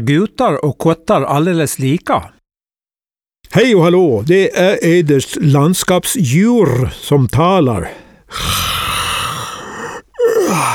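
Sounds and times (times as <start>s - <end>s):
speech: 0.0s - 2.4s, 3.5s - 8.8s, 10.5s - 10.7s
long loud person yawning: 8.3s - 10.7s.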